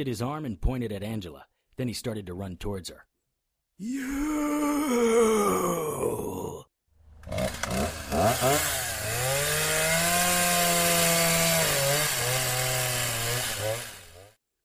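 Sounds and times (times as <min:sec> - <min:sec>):
speech: 0:00.0 - 0:03.1, 0:03.8 - 0:06.6, 0:07.3 - 0:09.2
saw revving with a buzzing whine: 0:07.1 - 0:14.4.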